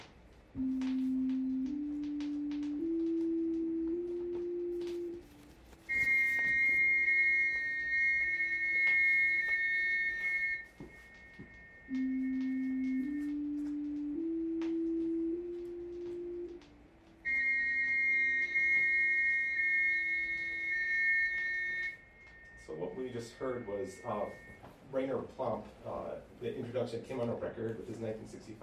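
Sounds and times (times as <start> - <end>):
speech: 0.5 - 0.9, 25.0 - 28.6
pure electronic tones producing combination tones: 0.6 - 26.2.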